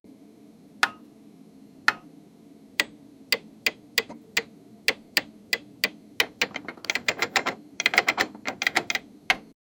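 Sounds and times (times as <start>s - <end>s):
panel buttons: 2.8s - 9.4s.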